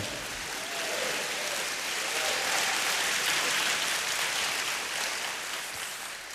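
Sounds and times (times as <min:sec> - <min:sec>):
audience clapping: 0:00.0 - 0:06.3.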